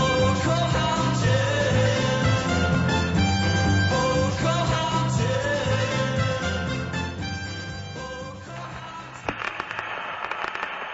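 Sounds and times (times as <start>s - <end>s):
music: 0.0s - 9.5s
dry crackle of a vinyl record under the needle: 8.4s - 10.9s
scattered sharp pops and clicks of a vinyl record: 9.2s - 10.9s.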